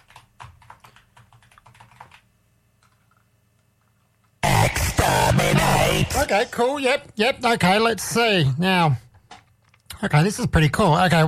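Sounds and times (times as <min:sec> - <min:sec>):
rapid computer keyboard typing: 0:00.0 - 0:03.2
sudden loud burst of noise: 0:04.4 - 0:06.7
speech: 0:06.1 - 0:09.0, 0:10.0 - 0:11.2.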